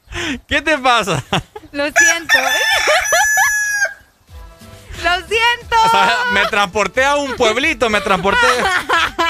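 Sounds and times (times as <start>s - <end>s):
speech: 0.3s - 3.2s, 5.0s - 9.1s
rooster crowing: 2.0s - 4.1s
laughter: 5.8s - 9.2s.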